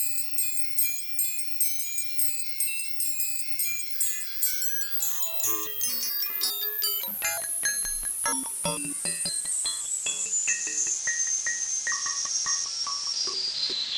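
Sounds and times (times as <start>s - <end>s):
Morse code tones shifted down in frequency: 0.0s - 13.8s.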